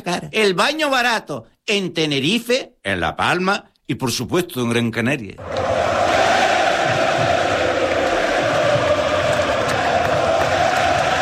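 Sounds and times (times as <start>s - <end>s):
speech: 0.0s - 5.8s
large stadium crowd of football fans chanting a player's name in unison: 5.4s - 11.2s.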